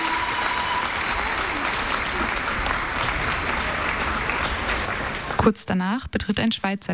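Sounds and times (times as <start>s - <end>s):
large crowd applause at artistic cycling world championships in Göttingen: 0.0s - 5.6s
fans' bicycle bells ringing in thin high tones: 0.6s - 4.9s
speech: 5.4s - 6.9s.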